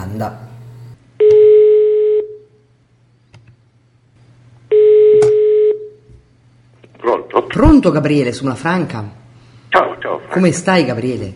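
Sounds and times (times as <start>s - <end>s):
speech: 0.1s - 0.5s, 7.6s - 11.3s
outgoing telephone call ring tones: 1.2s - 2.4s, 4.7s - 6.0s.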